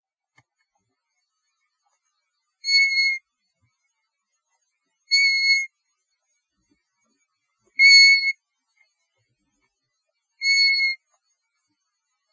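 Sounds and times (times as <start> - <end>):
European golden plover calling with a mournful whistle: 2.6 - 3.2, 5.1 - 5.7, 7.8 - 8.4, 10.4 - 11.0.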